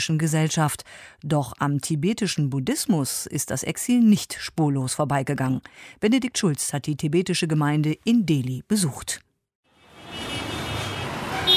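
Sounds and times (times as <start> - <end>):
speech: 0.0 - 9.3
heavy traffic on a busy main road in northern Delhi: 9.7 - 11.5.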